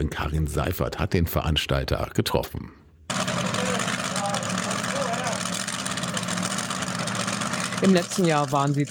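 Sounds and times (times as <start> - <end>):
speech: 0.0 - 2.8, 7.8 - 8.9
tractor engine running at a tractor pulling event near Salzhemmendorf: 3.1 - 8.9.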